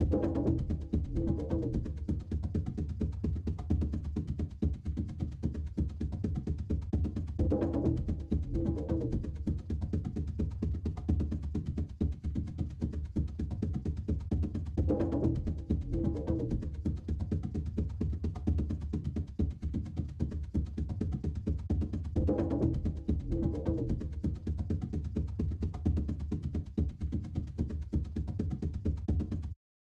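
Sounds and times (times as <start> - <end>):
low action percussion music: 0.0 - 29.6.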